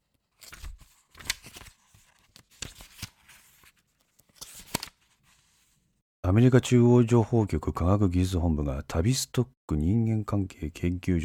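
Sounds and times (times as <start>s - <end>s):
pages of a worn book with a frayed spine turning: 0.0s - 5.8s
dry paper rustling: 0.3s - 5.6s
speech: 6.3s - 11.2s.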